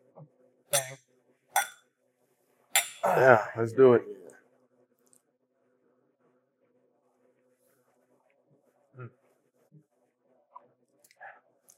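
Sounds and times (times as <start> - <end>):
glasses clinking in a toast: 0.7 - 1.0, 1.6 - 1.8, 2.8 - 3.1
speech: 3.2 - 4.1.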